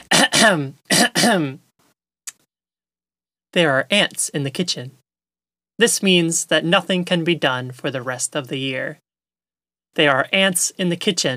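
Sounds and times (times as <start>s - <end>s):
person clearing throat: 0.0s - 1.6s
speech: 0.4s - 1.6s, 3.6s - 5.0s, 5.8s - 9.0s, 9.9s - 11.3s.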